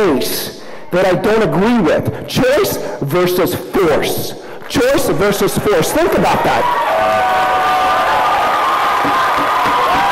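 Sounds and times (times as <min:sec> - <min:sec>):
speech: 0:00.0 - 0:07.2
roomful of people clapping loudly at a meeting: 0:05.6 - 0:10.1
roomful of people cheering with whoops and shouts: 0:06.2 - 0:10.1.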